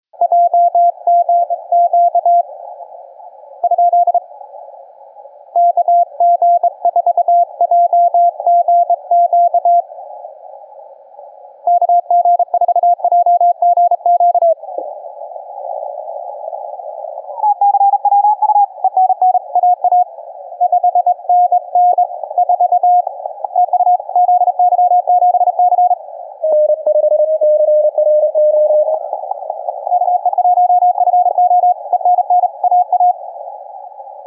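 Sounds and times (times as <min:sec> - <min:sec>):
morse code signals: 0:00.2 - 0:02.4, 0:03.6 - 0:04.2, 0:05.6 - 0:09.8, 0:11.7 - 0:14.6, 0:17.3 - 0:33.2.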